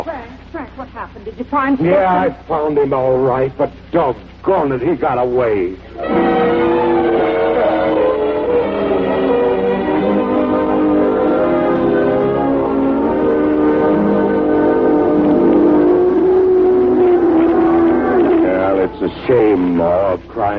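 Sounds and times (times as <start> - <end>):
speech: 0.0 - 6.7, 19.3 - 20.5
car engine revving and pulling away: 5.9 - 19.9.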